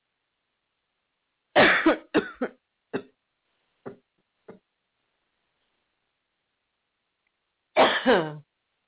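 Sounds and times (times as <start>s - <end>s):
harsh coughing: 1.6s - 3.1s, 7.8s - 8.4s.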